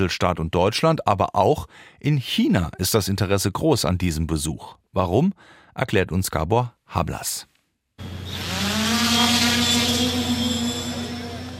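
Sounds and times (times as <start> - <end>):
speech: 0.0 - 10.2
small drone's motors buzzing during takeoff: 8.0 - 11.5.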